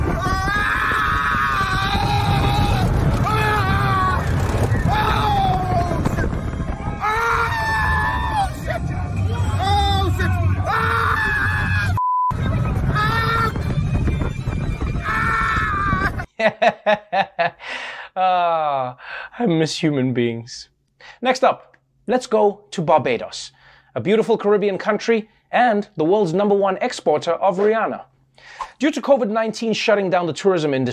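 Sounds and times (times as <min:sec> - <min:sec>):
constant rushing rumble of a roller coaster: 0:00.0 - 0:16.3
riders screaming on a roller coaster ride: 0:00.0 - 0:16.3
laughter: 0:16.0 - 0:17.6
speech: 0:19.5 - 0:30.9.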